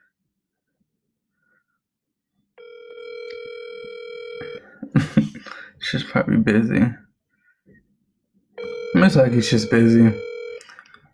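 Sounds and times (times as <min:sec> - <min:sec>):
phone outgoing call ringing tone: 0:02.6 - 0:04.7, 0:08.6 - 0:10.7
speech: 0:05.9 - 0:07.0, 0:09.1 - 0:10.3.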